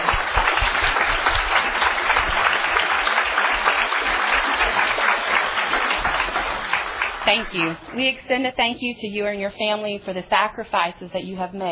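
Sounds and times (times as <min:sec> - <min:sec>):
sizable audience applauding: 0:00.0 - 0:08.2
speech: 0:07.3 - 0:11.7.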